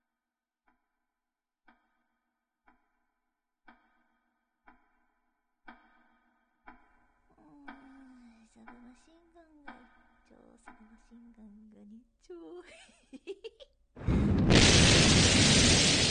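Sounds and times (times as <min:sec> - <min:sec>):
person chattering and giggling: 0:12.3 - 0:13.8
very loud explosion with sustained blast: 0:14.0 - 0:16.1.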